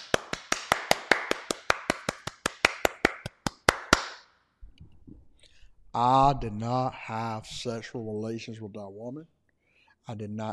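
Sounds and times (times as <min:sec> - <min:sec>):
audience applauding with slow regular claps: 0:00.0 - 0:04.1
faint low rumble: 0:04.6 - 0:08.1
speech: 0:06.0 - 0:09.4, 0:10.1 - 0:10.5.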